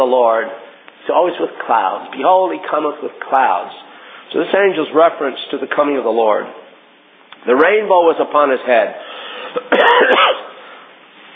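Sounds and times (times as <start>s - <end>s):
speech: 0.0s - 6.6s, 7.4s - 9.1s, 9.7s - 10.4s
rough rasping throat-clearing cough: 9.5s - 10.6s.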